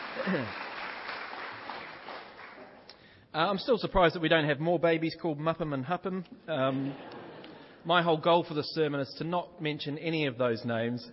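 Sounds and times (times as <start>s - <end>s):
roomful of people clapping: 0.0s - 3.0s
speech: 0.2s - 0.6s, 3.4s - 7.2s, 7.8s - 11.1s.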